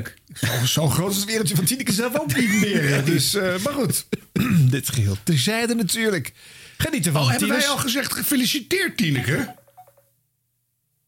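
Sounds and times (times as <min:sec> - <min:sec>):
speech: 0:00.0 - 0:09.6
laughter: 0:00.5 - 0:04.3
short electronic telephone dialing tones: 0:09.4 - 0:10.0.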